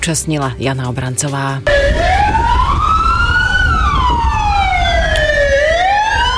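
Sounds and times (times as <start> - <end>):
speech: 0.0 - 2.5
steady low rumble: 1.6 - 6.3
emergency siren wailing in a theatre: 1.7 - 6.3.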